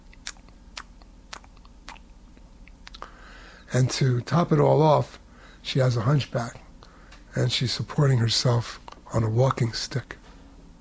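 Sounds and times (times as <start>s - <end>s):
lip sounds: 0.0s - 3.1s, 8.8s - 9.1s
voice imitating wet chewing or sucking mouth noises: 0.0s - 3.1s, 8.8s - 9.1s
speech: 3.7s - 6.6s, 7.4s - 10.2s.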